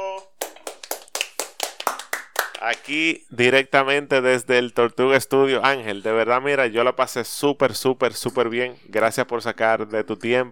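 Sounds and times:
hands clapping in applause: 0.1s - 3.0s
speech: 2.6s - 10.5s.

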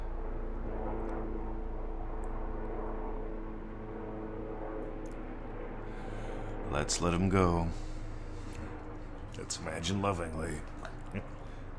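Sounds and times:
helicopter droning overhead with engine hum and rotor throb: 0.0s - 11.7s
speech: 6.7s - 7.9s, 9.4s - 11.4s.

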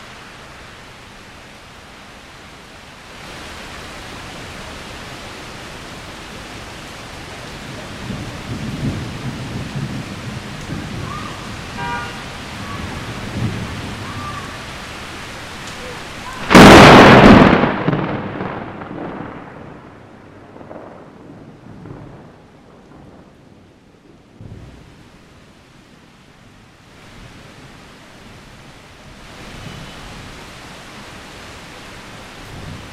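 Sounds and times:
steady rain falling: 0.0s - 32.9s
thunder rumbling and cracking: 7.7s - 14.6s, 16.3s - 25.0s.

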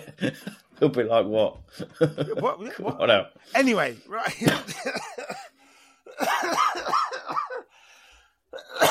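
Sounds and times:
speech: 0.2s - 5.5s
person coughing: 4.4s - 7.7s, 8.5s - 8.8s.

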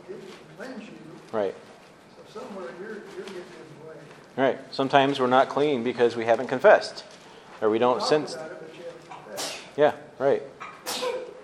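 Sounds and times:
speech: 0.6s - 1.7s, 2.3s - 8.6s, 9.8s - 11.0s
sharp breathy sneeze: 9.1s - 9.8s, 10.6s - 11.4s.

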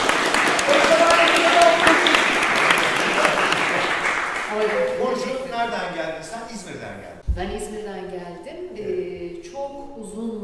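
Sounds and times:
crowd applauding: 0.0s - 5.7s
speech: 6.2s - 10.4s.

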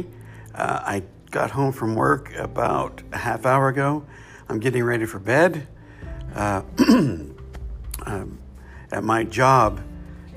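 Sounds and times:
speech: 0.0s - 7.3s, 8.0s - 10.3s
person clearing throat with rough guttural rasps and grunts: 6.8s - 7.3s.

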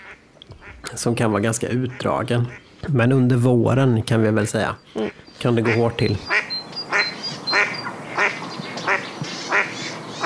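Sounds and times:
duck quacking: 0.0s - 0.9s, 5.0s - 10.2s
speech: 0.9s - 6.4s
faint high chirps from other birds: 4.8s - 10.2s.

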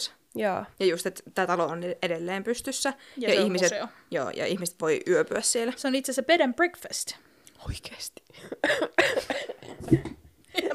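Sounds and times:
speech: 0.0s - 10.7s
harsh raspy coughing: 8.4s - 10.1s.

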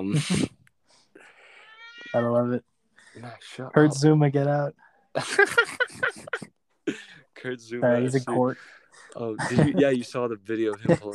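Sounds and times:
speech: 0.0s - 0.6s, 2.1s - 11.1s
cat giving a short sharp sound and a rising meow: 1.6s - 2.3s
laughter: 5.2s - 7.1s, 7.8s - 11.1s.

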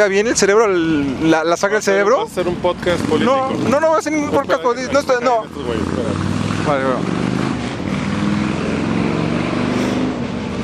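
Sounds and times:
speech: 0.0s - 7.2s
powerful motorcycle engine roaring: 2.3s - 10.6s.

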